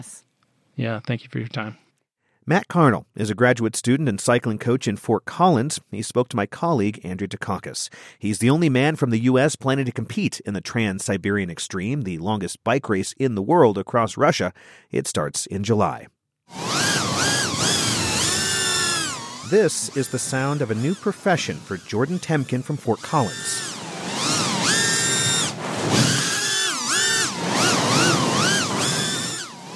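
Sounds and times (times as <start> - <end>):
speech: 0.8 - 1.8, 2.4 - 17.1, 19.5 - 23.7
racing drone high-pitched motor whine on an outdoor obstacle course: 16.5 - 29.7.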